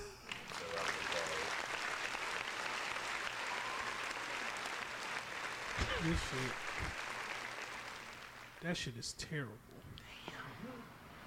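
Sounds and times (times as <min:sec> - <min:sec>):
crowd applause: 0:00.0 - 0:08.8
speech: 0:06.0 - 0:07.0, 0:08.6 - 0:10.1.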